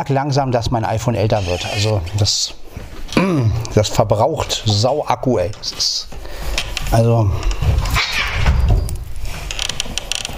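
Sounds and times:
speech: 0:00.0 - 0:08.1
cats thumping and scrabbling: 0:07.5 - 0:10.3.

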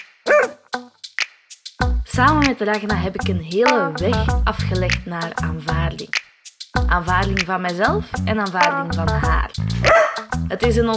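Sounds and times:
dog barking: 0:00.3 - 0:00.6, 0:09.9 - 0:10.3
speech: 0:02.2 - 0:06.2, 0:06.9 - 0:10.9.

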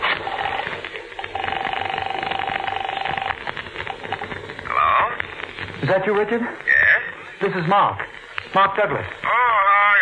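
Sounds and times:
telephone ringing: 0:00.2 - 0:04.2
voices: 0:04.4 - 0:10.0
speech: 0:05.9 - 0:06.7, 0:07.4 - 0:09.4.

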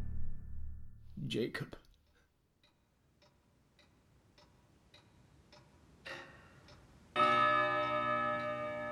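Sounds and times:
speech: 0:01.3 - 0:01.9
clock ticking softly: 0:02.1 - 0:08.9
clock striking with a loud resonant chime: 0:07.1 - 0:08.9.

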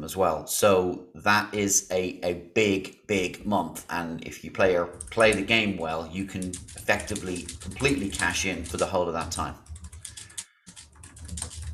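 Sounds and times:
speech: 0:00.0 - 0:09.7
rapid clatter of keys on a computer keyboard: 0:04.8 - 0:11.7.

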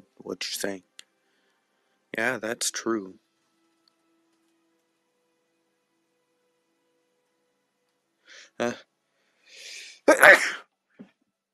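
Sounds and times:
speech: 0:00.3 - 0:00.9, 0:02.2 - 0:03.2, 0:08.6 - 0:08.9, 0:09.6 - 0:10.6
breathy halting sharp inhales: 0:08.3 - 0:08.6, 0:09.2 - 0:10.0
faint sniff: 0:09.5 - 0:10.0
loud explosive sneeze: 0:09.8 - 0:10.6.

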